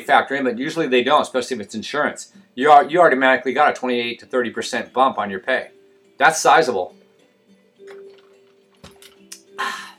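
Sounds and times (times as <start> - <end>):
speech: 0.0 - 7.0
short slurping draw of an iced drink: 7.8 - 9.5
sipping an iced coffee: 7.8 - 9.9.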